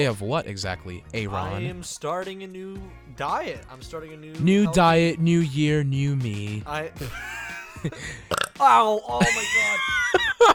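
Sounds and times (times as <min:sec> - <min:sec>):
speech: 0:00.0 - 0:10.5
laughter: 0:07.0 - 0:08.2, 0:09.2 - 0:10.5
long loud throaty burp: 0:08.3 - 0:08.6.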